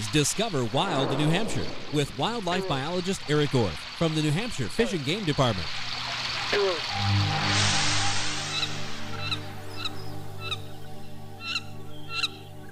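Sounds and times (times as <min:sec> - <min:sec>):
speech: 0:00.1 - 0:07.5
female wood duck giving plaintive squealing calls: 0:08.5 - 0:10.8, 0:11.4 - 0:12.5.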